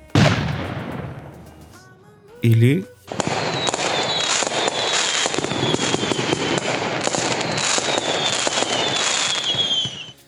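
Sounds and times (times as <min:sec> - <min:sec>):
explosion blast: 0:00.0 - 0:01.7, 0:03.1 - 0:10.2
firecrackers popping and crackling: 0:00.0 - 0:10.2
speech: 0:02.4 - 0:03.2
thin whistling streaks of firecrackers: 0:03.1 - 0:10.2.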